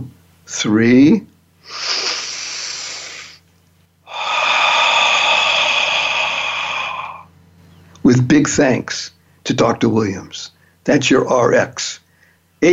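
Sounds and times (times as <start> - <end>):
speech: 0.5 - 2.0, 8.2 - 12.0
slow deep conscious inhale and exhale: 1.6 - 3.4, 4.0 - 7.3.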